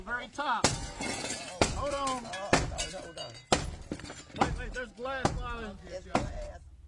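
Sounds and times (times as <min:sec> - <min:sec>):
speech: 0:00.1 - 0:01.2, 0:01.8 - 0:03.5, 0:04.4 - 0:06.6
heavy strikes as city emergency services force a door: 0:05.1 - 0:06.8.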